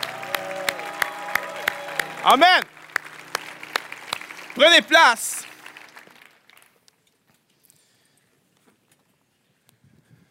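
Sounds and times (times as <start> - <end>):
sustained music: 0.0 - 6.6
audience clapping in rhythm: 0.0 - 6.9
speech: 2.2 - 2.8, 4.6 - 5.4.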